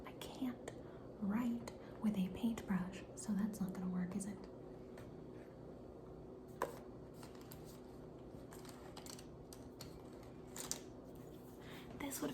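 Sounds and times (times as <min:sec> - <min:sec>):
speech: 0:00.4 - 0:04.6, 0:12.2 - 0:12.3
rummaging through a headphone bag holding pencils, pens and markers: 0:06.6 - 0:11.4.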